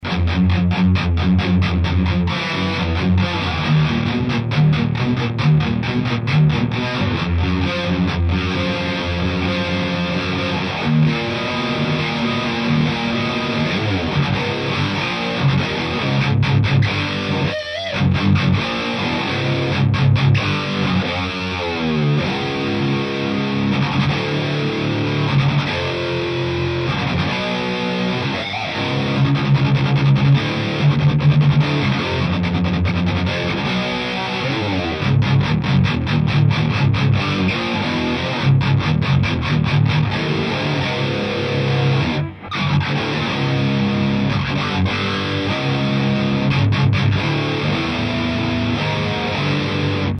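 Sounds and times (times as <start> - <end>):
AMT P1 Legend Amp Series amplifier at medium gain: 0.0 - 50.1.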